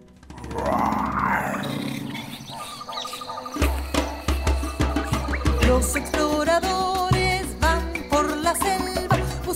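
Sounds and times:
sharp rhythmic thumps and clatters: 0.0s - 1.2s, 2.1s - 9.5s
deep rumbling lion roar: 0.3s - 2.9s.

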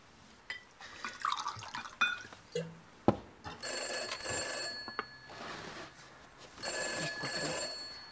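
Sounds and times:
liquid pouring: 1.0s - 2.2s
telephone ringing: 3.6s - 5.7s, 6.6s - 8.0s.

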